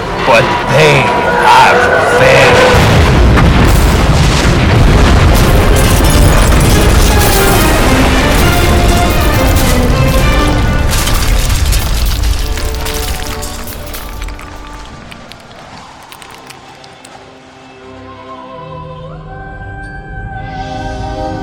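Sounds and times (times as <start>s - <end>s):
speech: 0.3s - 2.5s
explosions from incoming weapons fire striking a starship in a space battle: 2.3s - 14.8s.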